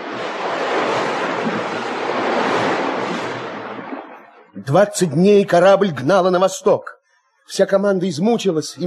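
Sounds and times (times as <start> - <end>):
constant rush of wind at sea: 0.0 - 4.5
broad crashing waves on a stormy sea: 0.0 - 5.7
speech: 4.7 - 8.8.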